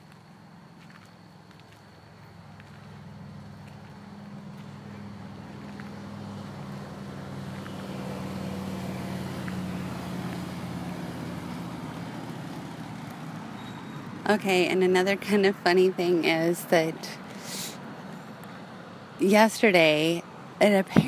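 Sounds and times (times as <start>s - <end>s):
motorcycle engine rumbling: 0.0s - 16.5s
windy outdoor noise: 0.0s - 21.0s
speech: 14.3s - 17.2s, 19.2s - 21.0s.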